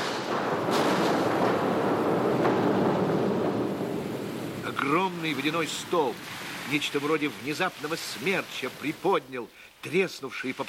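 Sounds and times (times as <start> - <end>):
deafening explosion sound effect: 0.0 - 6.2
speech: 4.9 - 10.6.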